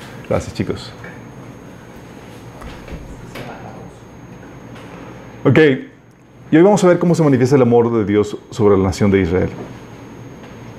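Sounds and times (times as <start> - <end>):
steady room hum: 0.0 - 10.7
speech: 0.3 - 1.1, 5.4 - 5.9, 6.5 - 9.8
door swinging shut indoors: 2.5 - 3.9.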